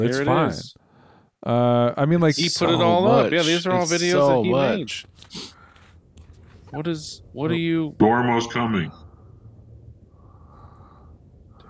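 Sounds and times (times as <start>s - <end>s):
speech: 0.0s - 0.8s, 1.4s - 5.6s, 6.7s - 9.0s
heavy breathing into a microphone: 0.8s - 1.4s, 5.2s - 6.0s, 9.0s - 11.6s.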